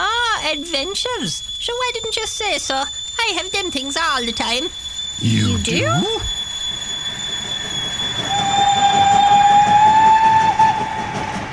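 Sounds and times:
speech: 0:00.5 - 0:06.4
high whistle-like tone: 0:00.6 - 0:10.4
train rumbling on rails: 0:08.3 - 0:11.5.

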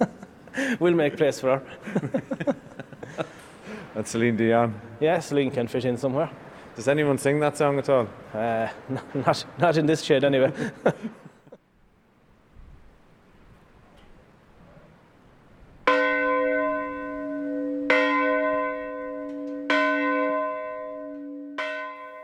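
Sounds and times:
speech: 0:00.0 - 0:03.4, 0:04.0 - 0:11.2
laughter: 0:00.0 - 0:04.0, 0:08.4 - 0:09.5, 0:10.3 - 0:11.6
village church bell tolling for the drowned: 0:15.9 - 0:22.2.

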